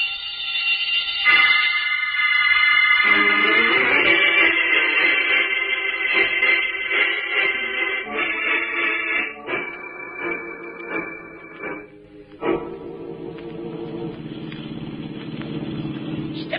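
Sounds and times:
burglar alarm ringing: 0:00.0 - 0:11.9
old car engine driving: 0:13.4 - 0:16.5.

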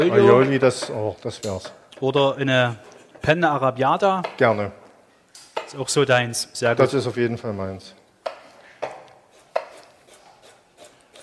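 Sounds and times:
speech: 0:00.0 - 0:04.8, 0:05.7 - 0:08.4
knife cutting fresh ginger into strips on a board for a curry: 0:08.2 - 0:11.2.

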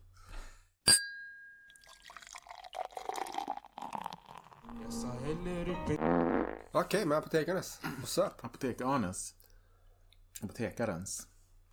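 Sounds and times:
bright glassy clink: 0:00.9 - 0:02.6
soft drink gurgling and fizzing as it pours into a glass: 0:01.7 - 0:04.7
speech: 0:04.7 - 0:09.4, 0:10.4 - 0:11.3.

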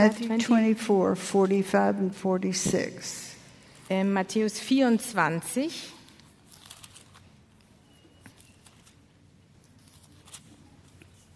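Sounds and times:
speech: 0:00.0 - 0:03.3, 0:03.9 - 0:06.0
thin paper Bible pages turning: 0:06.1 - 0:11.3.

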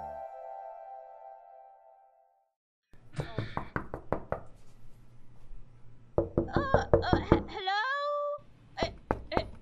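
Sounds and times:
sharp knocks on a door: 0:03.2 - 0:04.5, 0:06.2 - 0:07.5, 0:08.9 - 0:09.5.

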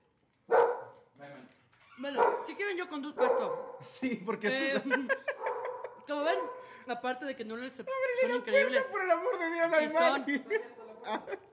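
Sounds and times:
dog barking: 0:00.5 - 0:01.1, 0:02.2 - 0:02.6, 0:03.2 - 0:03.8, 0:05.3 - 0:06.8
speech: 0:02.0 - 0:05.4, 0:06.1 - 0:11.5
laughter: 0:04.3 - 0:06.1, 0:08.3 - 0:11.5.

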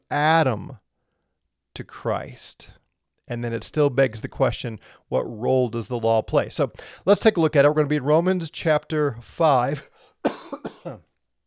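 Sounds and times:
speech: 0:00.1 - 0:00.8, 0:01.8 - 0:11.1
rough coughing: 0:10.2 - 0:11.1.

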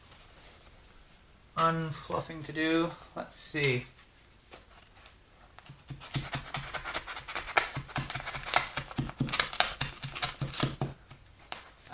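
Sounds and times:
speech: 0:01.6 - 0:04.1
fiberglass insulation being torn apart by hand: 0:05.5 - 0:10.8.

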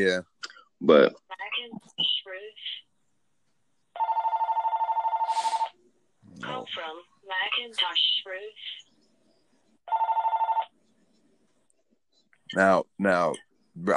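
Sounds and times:
speech: 0:00.0 - 0:02.5, 0:06.7 - 0:08.8, 0:12.5 - 0:13.9
landline telephone ringing with electronic bell: 0:04.0 - 0:05.6, 0:09.9 - 0:10.7.

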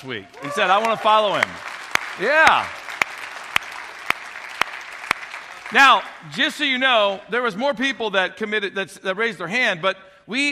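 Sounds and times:
speech: 0:00.0 - 0:02.8, 0:05.7 - 0:10.5
church crowd applauding: 0:00.0 - 0:06.6.

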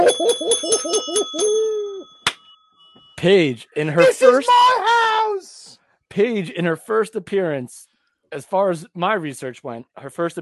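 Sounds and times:
small bell ringing rapidly: 0:00.0 - 0:03.2
speech: 0:03.2 - 0:05.6, 0:06.2 - 0:10.4.

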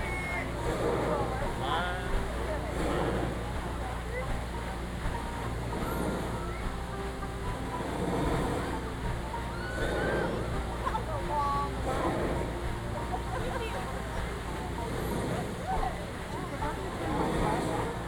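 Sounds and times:
rushing and splashing water from a log flume ride: 0:00.0 - 0:18.0
voices of people talking: 0:00.0 - 0:18.0.

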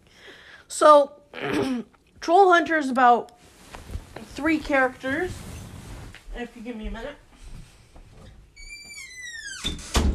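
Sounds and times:
speech: 0:00.8 - 0:03.4, 0:04.4 - 0:05.5, 0:06.4 - 0:07.2
door creaking: 0:08.2 - 0:10.1
door shutting with solid thud: 0:09.4 - 0:10.1.

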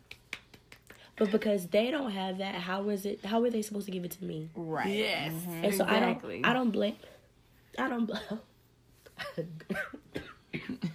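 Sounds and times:
speech: 0:01.2 - 0:07.2, 0:07.8 - 0:08.5, 0:09.4 - 0:10.0, 0:10.7 - 0:10.9
harsh rasping coughs: 0:09.6 - 0:10.9.

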